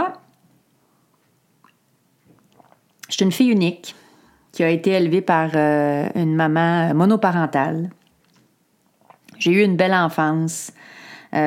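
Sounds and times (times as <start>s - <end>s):
small sip of a drink: 1.6s - 3.1s, 8.3s - 9.4s
soft wet mouth clicks: 1.6s - 3.1s, 9.0s - 9.4s
speech: 3.2s - 4.0s, 4.6s - 8.0s, 9.4s - 11.4s.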